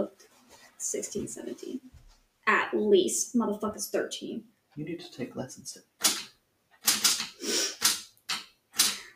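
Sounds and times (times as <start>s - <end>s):
speech: 0.8s - 5.9s
mechanical typewriter keys clacking: 6.0s - 9.0s.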